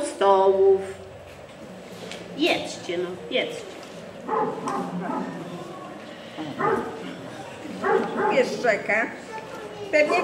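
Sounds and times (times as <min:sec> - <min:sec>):
speech: 0:00.2 - 0:01.0, 0:02.4 - 0:05.6, 0:06.4 - 0:07.0, 0:07.7 - 0:09.2, 0:09.9 - 0:10.2
faint voices murmuring: 0:01.6 - 0:10.2
loose dog barking in short bursts: 0:04.3 - 0:05.4, 0:06.6 - 0:07.0, 0:07.8 - 0:08.6.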